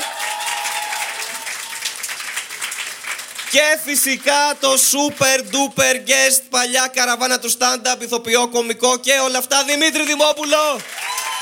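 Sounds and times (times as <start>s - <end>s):
live audience applause: 0.0s - 5.6s, 10.0s - 11.4s
speech: 3.5s - 11.0s.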